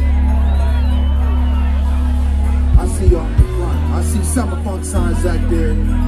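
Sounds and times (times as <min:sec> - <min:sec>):
large concert crowd in San Diego cheering: 0:00.0 - 0:06.0
concert crowd whistles: 0:00.3 - 0:01.7
speech: 0:04.4 - 0:06.0.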